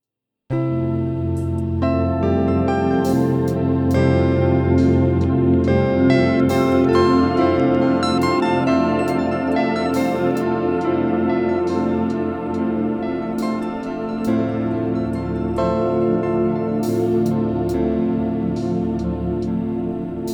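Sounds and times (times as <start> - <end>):
guitar playing: 0.5 - 20.3.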